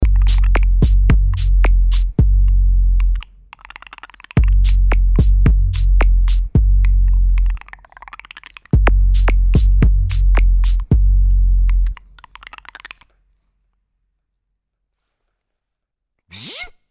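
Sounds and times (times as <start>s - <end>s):
808 drum machine sound: 0.0s - 3.2s, 4.4s - 7.6s, 8.8s - 12.0s.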